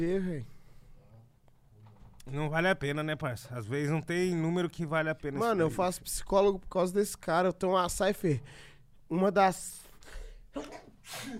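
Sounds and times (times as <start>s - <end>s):
speech: 0.0s - 0.6s, 2.3s - 11.3s
sneeze: 10.5s - 11.3s.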